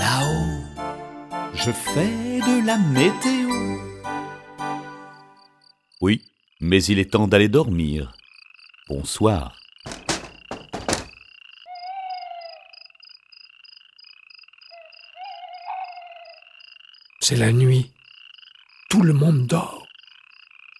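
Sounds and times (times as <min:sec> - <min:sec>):
speech: 0:01.6 - 0:03.9, 0:06.0 - 0:08.2, 0:08.9 - 0:10.0, 0:17.3 - 0:18.0, 0:18.9 - 0:19.8
small green tree frogs calling in a pulsing high trill: 0:05.2 - 0:20.7.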